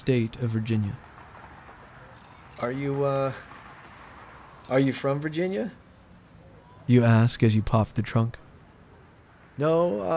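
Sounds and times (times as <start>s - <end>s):
speech: 0.0s - 1.1s, 2.6s - 3.5s, 4.7s - 5.8s, 6.9s - 8.4s, 9.6s - 10.1s
set of keys jangling: 2.1s - 2.7s, 5.9s - 6.8s.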